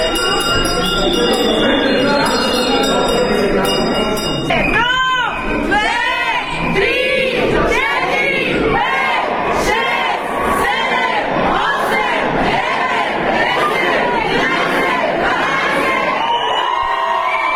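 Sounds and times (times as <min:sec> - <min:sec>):
school bell clanging: 0:00.0 - 0:05.6
loud crowd cheering and chattering: 0:00.0 - 0:17.5.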